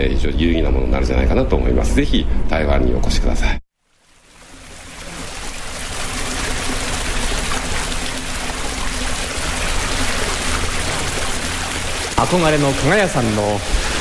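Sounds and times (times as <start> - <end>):
speech: 0.0 - 3.6, 12.2 - 13.9
hot spring water gurgling and pouring into a large hot spring bath: 3.9 - 13.9.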